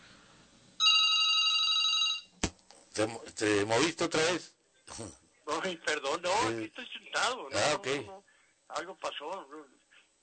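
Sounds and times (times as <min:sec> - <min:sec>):
telephone ringing with an incoming call: 0:00.8 - 0:02.3
speech: 0:03.0 - 0:10.2.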